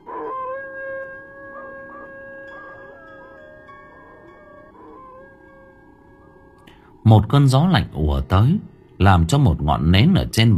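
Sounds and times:
dogs howling at night from houses: 0.0s - 6.6s
speech: 7.0s - 10.5s.

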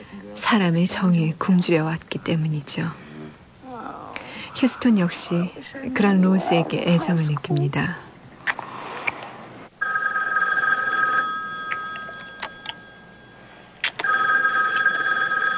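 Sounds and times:
speech: 0.4s - 3.0s, 4.6s - 8.1s
telephone ringing for an incoming call in a film scene: 9.8s - 15.5s.

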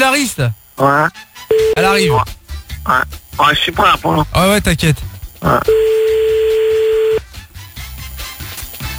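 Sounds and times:
speech: 0.2s - 6.2s
telephone line tone while a number is dialed: 1.5s - 2.0s, 5.7s - 7.2s.

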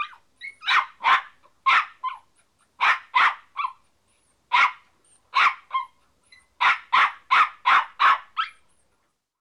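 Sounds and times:
dog barking: 0.0s - 2.2s, 2.8s - 3.8s, 4.5s - 5.9s, 6.6s - 8.6s.

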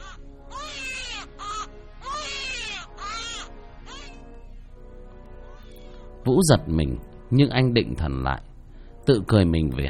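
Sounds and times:
doll making a baby's crying sound: 0.0s - 4.2s
speech: 6.3s - 9.8s.

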